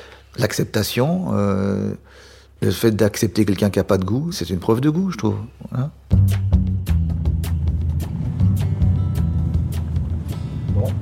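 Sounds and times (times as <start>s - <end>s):
speech: 0.4s - 6.5s
car engine rumbling at low pitch: 7.6s - 11.0s.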